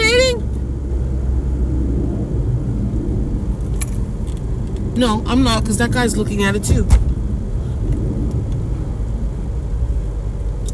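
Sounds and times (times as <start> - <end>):
fighter jet flying overhead: 0.6 - 5.0, 6.8 - 10.5
speech: 5.0 - 7.1.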